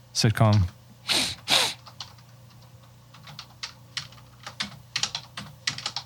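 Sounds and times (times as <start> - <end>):
speech: 0.2 - 0.8
rapid irregular typing on a computer keyboard: 1.8 - 6.0.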